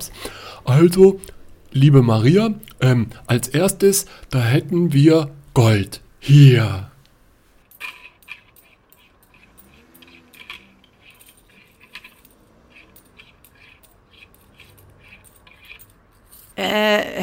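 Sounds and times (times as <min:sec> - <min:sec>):
speech: 0:00.0 - 0:06.9, 0:16.6 - 0:17.2
loose euro coins jingling as small change is shaken or sifted: 0:07.6 - 0:16.6.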